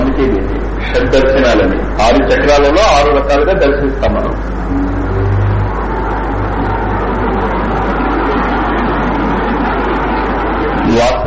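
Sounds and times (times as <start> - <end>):
fan whirring: 0.0 - 11.2
speech: 1.0 - 4.8
cars passing outside: 4.0 - 10.8.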